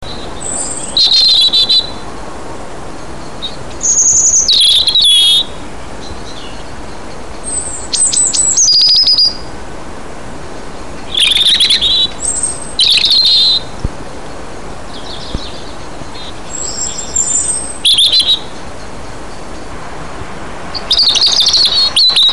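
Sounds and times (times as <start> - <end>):
robin singing: 0.0 - 9.6, 10.4 - 19.8, 20.6 - 22.3.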